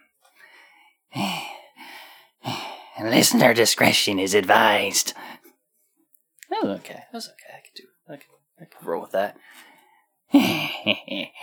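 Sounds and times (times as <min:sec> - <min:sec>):
heavy labored breathing: 0:00.3 - 0:03.0, 0:05.1 - 0:05.5, 0:09.4 - 0:10.8
speech: 0:03.0 - 0:05.4, 0:06.7 - 0:09.7, 0:10.4 - 0:11.4.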